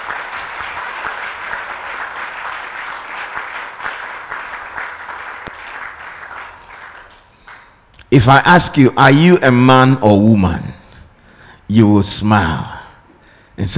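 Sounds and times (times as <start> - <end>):
large crowd clapping steadily and loudly: 0.0 - 7.8
speech: 8.1 - 10.7, 11.7 - 12.7, 13.6 - 13.7.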